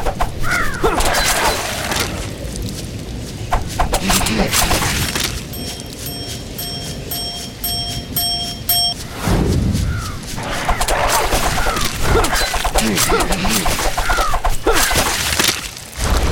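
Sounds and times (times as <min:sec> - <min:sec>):
crackling blasts in game sound effects: 0:00.0 - 0:06.6, 0:09.1 - 0:16.3
video game zombie bird creature cawing harshly: 0:00.4 - 0:02.2, 0:09.8 - 0:15.0
steady electronic beeps: 0:05.5 - 0:09.0.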